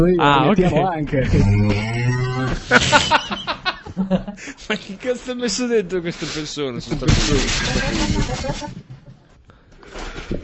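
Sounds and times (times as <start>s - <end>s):
speech: 0.0s - 3.4s, 4.0s - 8.9s
person imitating a cow mooing: 1.3s - 2.7s
laughter: 2.3s - 5.1s, 7.6s - 9.0s.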